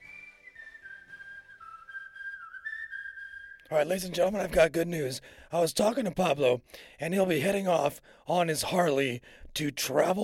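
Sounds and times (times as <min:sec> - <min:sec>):
person whistling a wavering tune: 0:00.0 - 0:03.7
speech: 0:03.7 - 0:10.2.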